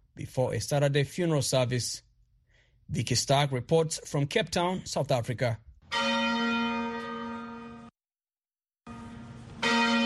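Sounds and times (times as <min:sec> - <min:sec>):
speech: 0:00.2 - 0:02.1, 0:02.9 - 0:06.1
cathedral church bells tolling: 0:05.9 - 0:07.9, 0:08.9 - 0:10.0.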